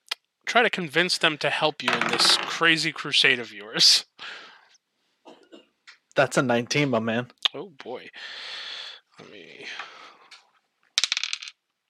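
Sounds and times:
speech: 0:00.5 - 0:04.4, 0:06.2 - 0:09.9
percentile die clattering onto a hard tabletop: 0:01.9 - 0:02.6, 0:11.0 - 0:11.6.

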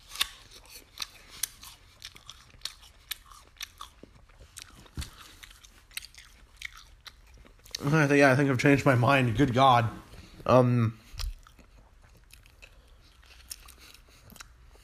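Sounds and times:
crisp biting and chewing of a Golden Delicious apple: 0:00.0 - 0:07.9, 0:11.0 - 0:14.8
speech: 0:07.8 - 0:11.0.

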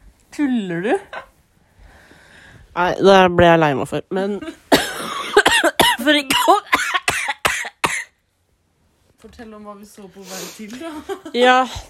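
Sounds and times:
speech: 0:00.4 - 0:01.3, 0:02.8 - 0:04.6, 0:06.0 - 0:07.0, 0:09.2 - 0:11.8
person coughing: 0:04.7 - 0:08.2.

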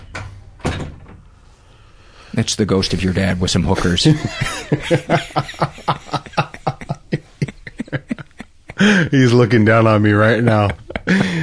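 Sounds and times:
door closing: 0:00.0 - 0:01.3
speech: 0:02.3 - 0:06.2, 0:08.8 - 0:11.4
laughter: 0:03.8 - 0:09.5, 0:10.1 - 0:11.4.

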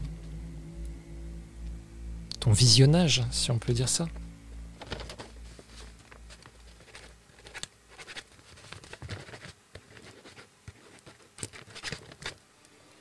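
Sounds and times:
low hum: 0:00.0 - 0:08.0
speech: 0:02.4 - 0:04.2
pen scratching on a sheet of parchment: 0:06.7 - 0:12.4.

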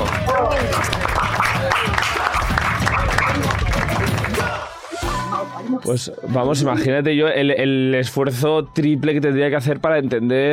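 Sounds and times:
several people clapping: 0:00.0 - 0:05.0
people cheering: 0:00.0 - 0:05.7
speech: 0:05.9 - 0:10.5.

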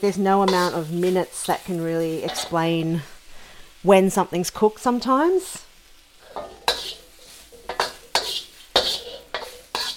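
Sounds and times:
speech: 0:00.0 - 0:03.1, 0:03.8 - 0:05.7
faint sizzle of food in a wok: 0:00.0 - 0:09.9
metal spatula scraping and stirring food in a metal wok: 0:00.4 - 0:02.6, 0:06.1 - 0:09.9.

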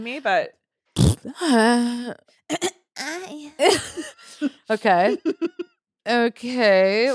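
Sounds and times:
speech: 0:00.0 - 0:00.6, 0:01.2 - 0:07.1
person making loud raspy throat-clearing noises: 0:01.0 - 0:02.8
laughter: 0:03.6 - 0:05.6.

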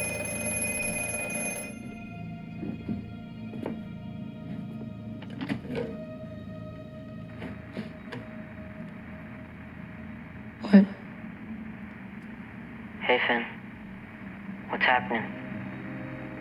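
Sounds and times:
telephone ringing with a bright tonal bell: 0:00.0 - 0:02.2
low room hum: 0:00.0 - 0:16.3
speech: 0:13.2 - 0:13.5.

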